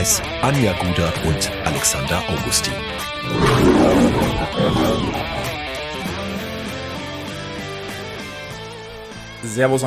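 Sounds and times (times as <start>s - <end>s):
speech: 0.0s - 5.4s, 9.4s - 9.8s
lion roaring: 3.2s - 6.4s.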